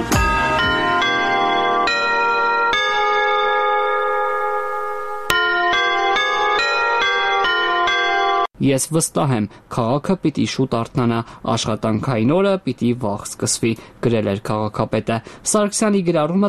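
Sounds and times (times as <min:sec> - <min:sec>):
bell chimes playing an anthem from the city hall building: 0:00.0 - 0:08.5
speech: 0:08.6 - 0:16.4.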